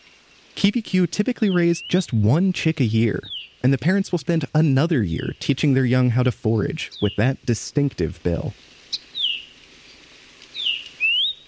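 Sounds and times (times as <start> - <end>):
speech: 0.6 - 9.0
Kiwikiu Maui parrotbill whistled call: 3.2 - 3.6, 8.9 - 9.5, 10.5 - 11.4.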